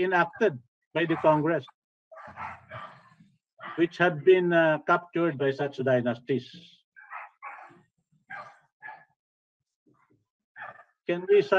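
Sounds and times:
speech: 0:00.0 - 0:02.8, 0:03.7 - 0:06.8, 0:11.1 - 0:11.5
dog barking in the background of a call: 0:01.0 - 0:03.8, 0:07.0 - 0:09.2, 0:10.6 - 0:10.9
dog yipping softly: 0:01.1 - 0:01.4, 0:02.1 - 0:03.8, 0:07.0 - 0:09.1, 0:10.6 - 0:10.9.

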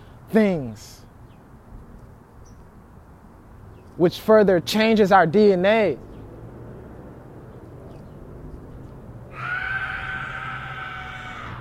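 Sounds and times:
speech: 0:00.3 - 0:01.0, 0:04.0 - 0:06.1
woman screaming high-pitched: 0:09.3 - 0:11.5.

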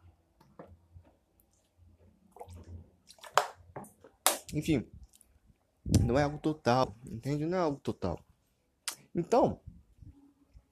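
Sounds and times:
sips and wet swallowing: 0:02.3 - 0:03.4
speech: 0:04.5 - 0:05.0, 0:06.1 - 0:08.3, 0:09.2 - 0:09.6.

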